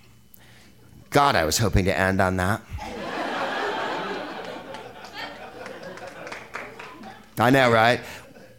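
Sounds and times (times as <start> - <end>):
speech: 1.2 - 2.9, 7.4 - 8.2
crowd laughing: 2.8 - 7.3
audience clapping: 3.7 - 7.8.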